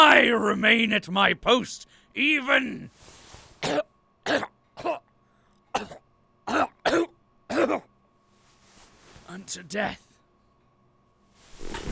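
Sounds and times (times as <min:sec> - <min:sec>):
speech: 0:00.2 - 0:05.0, 0:05.8 - 0:07.9, 0:09.3 - 0:10.0
harsh raspy coughs in an old control booth: 0:03.6 - 0:05.1, 0:05.7 - 0:07.9.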